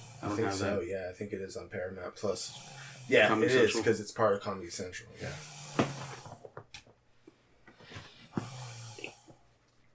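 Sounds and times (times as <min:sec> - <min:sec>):
quiet breathing: 0:00.0 - 0:00.6, 0:02.2 - 0:03.7, 0:05.1 - 0:06.4, 0:07.1 - 0:09.6
person snoring loudly: 0:00.0 - 0:00.8, 0:02.2 - 0:04.0, 0:05.0 - 0:06.4, 0:08.2 - 0:09.4
speech: 0:00.2 - 0:06.1.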